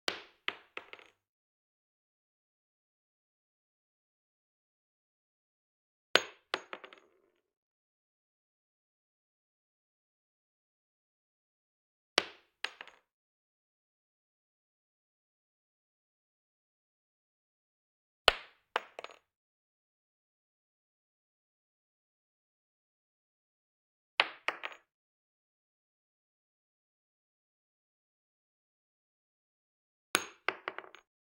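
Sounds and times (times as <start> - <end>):
.357 Magnum shell casing dropping on wood: 0.1 - 1.2, 6.2 - 7.3, 12.6 - 13.0, 18.8 - 19.2, 24.5 - 24.8, 30.2 - 31.0.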